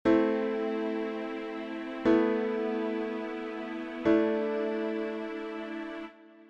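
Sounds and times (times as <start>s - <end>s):
A minor suspended chords: 0.1s - 6.4s.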